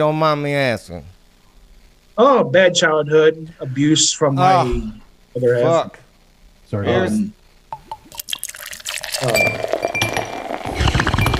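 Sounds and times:
speech: 0.0 - 1.1, 2.2 - 6.0, 6.7 - 7.4, 9.2 - 10.2
glasses clinking together in a toast: 7.8 - 10.6.

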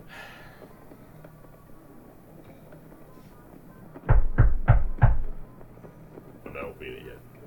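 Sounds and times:
faint murmur: 0.0 - 7.4
firm knocking on a wooden door: 4.0 - 5.4.

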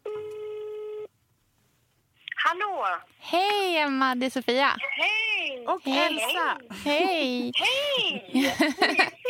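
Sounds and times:
ringback tone of an outgoing telephone call: 0.0 - 1.1
faint hiss: 0.0 - 9.2
speech: 2.6 - 9.2
laughter: 8.3 - 9.2.

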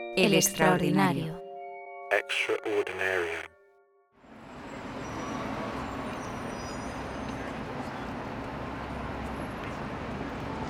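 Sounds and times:
speech: 0.2 - 1.4, 2.2 - 3.5
city street traffic roar on 6th Avenue: 4.3 - 10.6.

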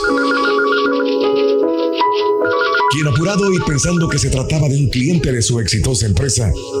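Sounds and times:
office telephone ringing: 0.0 - 4.8
speech: 2.9 - 6.7.

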